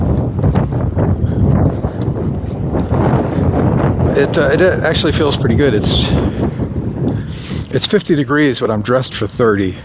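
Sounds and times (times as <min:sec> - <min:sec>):
steady wind buffeting the microphone: 0:00.0 - 0:09.8
speech: 0:04.2 - 0:06.6, 0:07.7 - 0:09.8.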